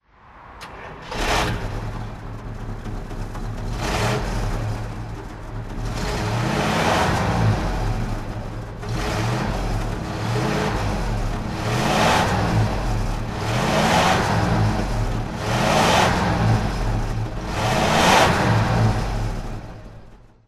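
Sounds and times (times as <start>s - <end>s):
1960 Bentley Continental S2 Park Ward DHC engine throttle revving: 0.3s - 20.4s.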